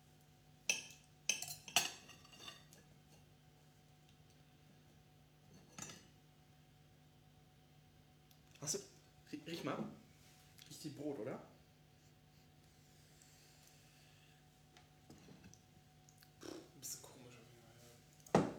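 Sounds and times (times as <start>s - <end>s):
faint steady hum: 0.0s - 18.5s
cutlery cutting through a meatball on a plate: 0.7s - 2.8s.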